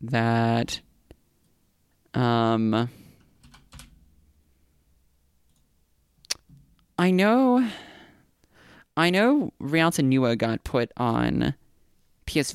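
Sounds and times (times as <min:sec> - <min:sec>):
speech: 0:00.0 - 0:00.9, 0:02.1 - 0:03.0, 0:07.0 - 0:07.9, 0:09.0 - 0:11.6, 0:12.3 - 0:12.5
soft room noise: 0:00.0 - 0:12.5
computer keyboard typing clicks: 0:03.4 - 0:04.0.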